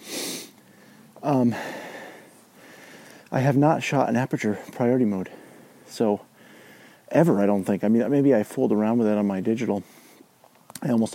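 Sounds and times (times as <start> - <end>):
person breathing heavily after climbing to the top of a hill: 0.0 - 3.3, 5.2 - 7.1
speech: 1.2 - 1.8, 3.3 - 6.3, 7.1 - 10.0, 10.8 - 11.1.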